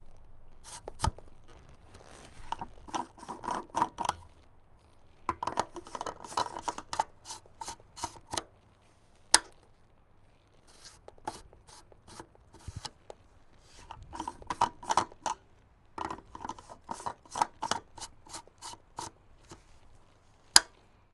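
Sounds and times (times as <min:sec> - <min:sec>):
motorcycle gas tank lid cap on and off: 0:00.6 - 0:01.2, 0:02.5 - 0:04.3, 0:05.3 - 0:08.5, 0:09.4 - 0:09.6, 0:10.8 - 0:13.0, 0:13.8 - 0:15.4, 0:16.0 - 0:19.6, 0:20.5 - 0:20.8.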